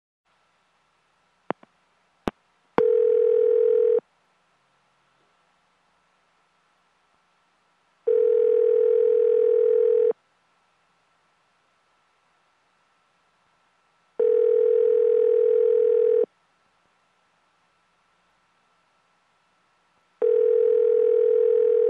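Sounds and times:
telephone call sound: 2.8s - 4.0s, 8.1s - 10.1s, 14.2s - 16.3s, 20.2s - 21.8s.

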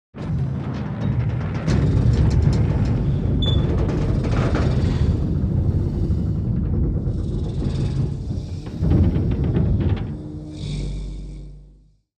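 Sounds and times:
garage door opening and closing: 0.2s - 11.1s.

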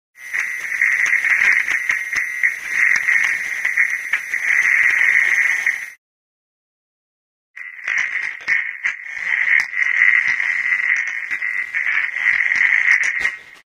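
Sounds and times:
computer noise of radio signals: 0.2s - 6.0s, 7.6s - 13.7s.

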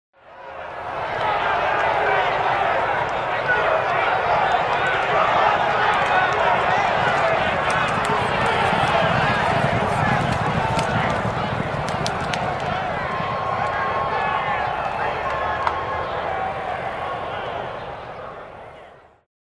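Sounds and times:
crowd of fans at a horse racing finish line: 0.2s - 19.2s
horses racing at the finish line: 0.7s - 18.9s.

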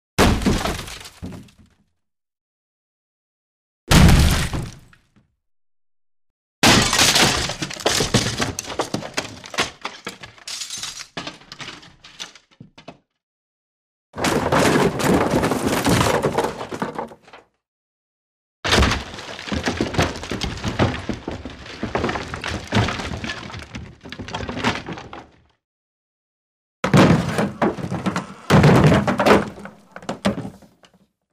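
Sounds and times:
wooden furniture breaking: 0.2s - 1.7s, 6.6s - 13.0s, 14.2s - 17.4s, 18.7s - 25.5s, 26.8s - 30.9s.

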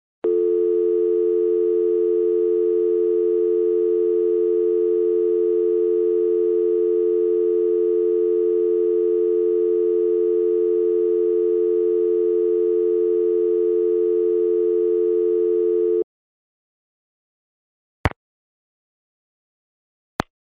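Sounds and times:
telephone off-hook long beep: 0.2s - 16.0s.

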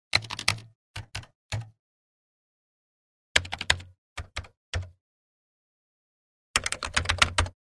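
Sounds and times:
computer keyboard: 0.1s - 1.8s, 3.4s - 5.0s, 6.6s - 7.6s.

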